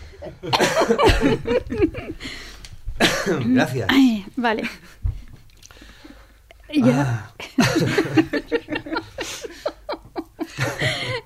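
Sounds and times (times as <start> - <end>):
laughter: 0.2 - 2.4, 6.9 - 11.2
speech: 0.2 - 2.5, 3.2 - 5.0, 6.7 - 8.7
woman chairing a session coughing: 0.4 - 1.5, 3.0 - 4.1, 6.8 - 7.8.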